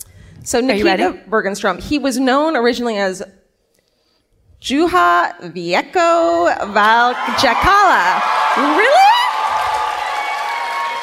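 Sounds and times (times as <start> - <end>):
speech: 0.4 - 3.4, 4.6 - 9.0
live audience applause: 7.1 - 11.0.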